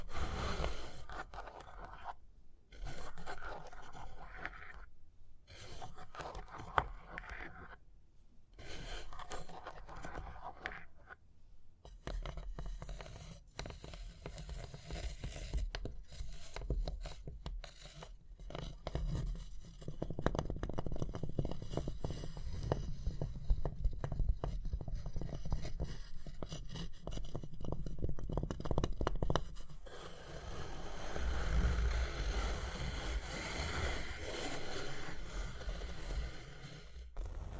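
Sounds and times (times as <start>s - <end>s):
tapping and scratching on a surface: 0.3s - 4.9s, 5.5s - 7.8s, 8.6s - 37.4s.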